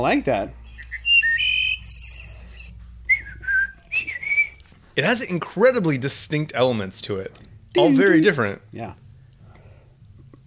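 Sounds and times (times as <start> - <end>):
speech: 0.0 - 0.6, 5.0 - 9.0
wood thrush singing: 0.4 - 4.6.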